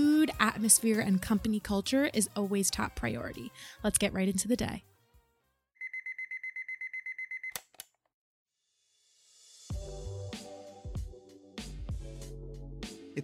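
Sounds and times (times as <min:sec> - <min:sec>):
upbeat music: 0:00.0 - 0:04.8, 0:09.7 - 0:13.2
speech: 0:00.5 - 0:04.9
digital alarm clock beeping in high tones: 0:05.8 - 0:07.6.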